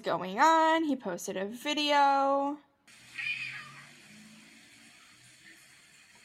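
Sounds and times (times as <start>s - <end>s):
speech: 0.0s - 3.0s
cat meowing at a door at midnight: 3.2s - 3.9s.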